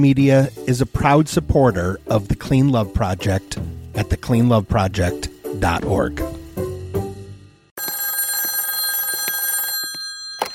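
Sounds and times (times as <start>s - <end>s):
speech: 0.0s - 6.3s
telephone bell ringing: 7.8s - 10.5s.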